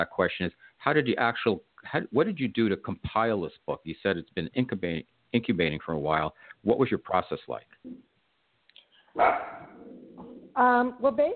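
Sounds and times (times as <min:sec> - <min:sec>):
speech: 0:00.0 - 0:08.1, 0:09.2 - 0:09.7, 0:10.6 - 0:11.3
single sharp dog bark: 0:09.2 - 0:09.8.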